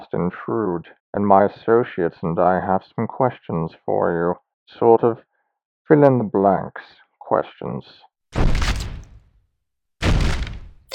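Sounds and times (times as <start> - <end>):
speech: 0.1 - 5.3, 5.9 - 8.6
heavy booming crashes against a door being knocked down: 8.4 - 9.2, 10.0 - 10.9.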